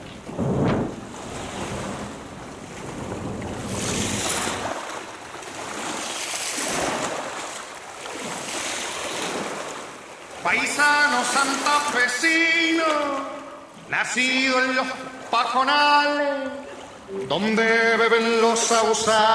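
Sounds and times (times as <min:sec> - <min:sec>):
steady wind buffeting the microphone: 0:00.0 - 0:07.4
waves surging and washing in open water: 0:00.0 - 0:19.3
speech: 0:10.5 - 0:13.3, 0:13.9 - 0:19.3.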